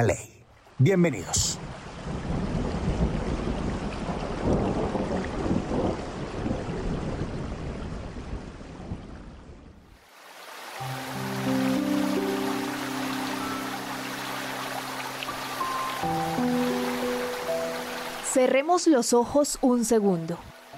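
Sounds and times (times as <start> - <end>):
speech: 0.0 - 1.6, 18.5 - 20.5
heavy rain: 1.0 - 18.7
deep rolls of thunder: 1.5 - 9.7
sustained music with held tones: 10.8 - 18.7.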